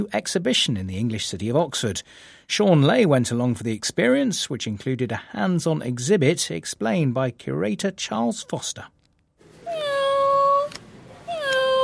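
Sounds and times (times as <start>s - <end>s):
speech: 0.0s - 9.0s
robotic toy cat mewing when stroked by hand: 9.6s - 11.8s.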